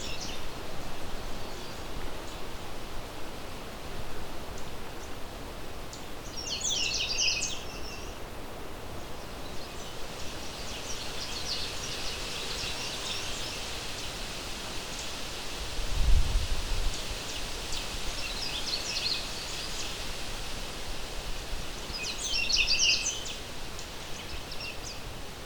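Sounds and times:
background noise: 0.0 - 25.4
male Canada Warbler singing in swampy wet territory: 6.2 - 8.2, 9.2 - 14.2, 16.9 - 20.0, 21.8 - 25.0.

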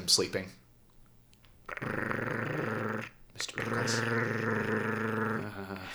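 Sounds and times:
dog growling low: 1.7 - 5.9.

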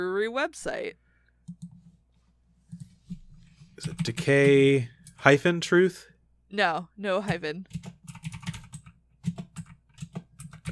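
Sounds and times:
speech: 0.0 - 1.6, 3.8 - 8.0
typing on a computer keyboard: 1.5 - 1.8, 3.8 - 5.2, 7.7 - 10.7.

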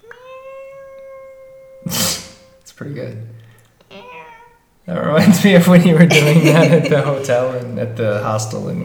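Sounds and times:
person imitating a cat meowing: 0.0 - 2.6
speech: 2.8 - 3.4, 4.9 - 8.8
laughter: 4.9 - 8.8.

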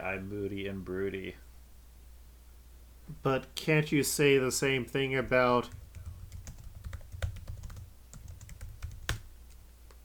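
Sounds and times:
low hum: 0.0 - 10.0
speech: 0.1 - 1.5, 3.2 - 5.8
fingers typing on a computer keyboard: 5.7 - 9.6.

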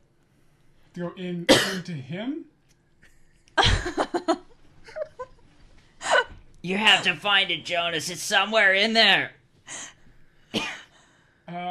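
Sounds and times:
speech: 1.0 - 2.5, 3.8 - 4.5, 6.6 - 9.9
person coughing: 1.5 - 2.0, 10.6 - 10.9.

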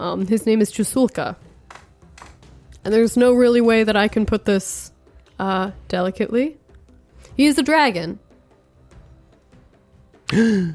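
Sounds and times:
speech: 0.0 - 1.4, 2.8 - 6.6, 7.4 - 8.2, 10.3 - 10.7
person gasping: 10.3 - 10.7.

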